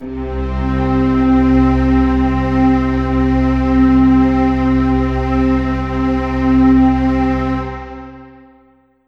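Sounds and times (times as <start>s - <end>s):
Yamaha SY22 synthesizer full strings note C2: 0.0s - 8.2s.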